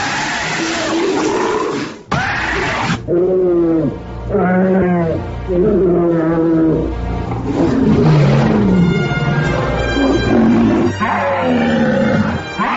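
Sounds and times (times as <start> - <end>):
loud deep dinosaur roars: 0.1 - 12.7
growling bellows: 3.1 - 12.7.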